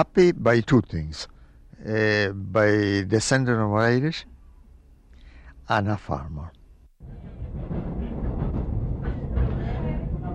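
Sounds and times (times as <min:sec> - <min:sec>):
speech: 0:00.0 - 0:04.3, 0:05.7 - 0:07.3
low rumble inside a moving train: 0:07.0 - 0:10.3.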